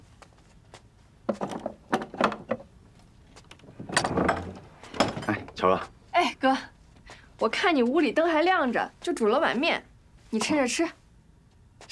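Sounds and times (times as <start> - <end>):
locked door opening: 3.4 - 5.6
speech: 5.6 - 6.7, 7.4 - 11.0.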